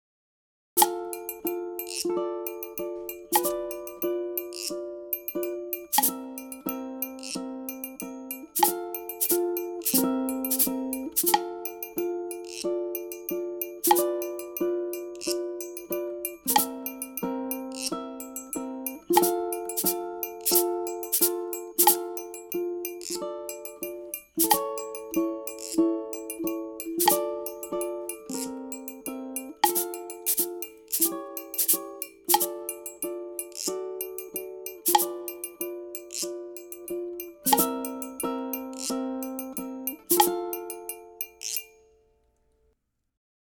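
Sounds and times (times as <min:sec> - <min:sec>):
ukulele playing a folk tune: 0:00.8 - 0:41.4.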